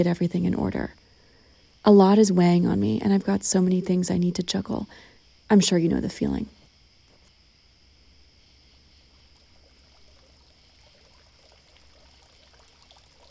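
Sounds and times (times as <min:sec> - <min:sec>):
speech: 0:00.0 - 0:01.0, 0:01.8 - 0:06.6
water fountain pouring and trickling: 0:09.2 - 0:13.3.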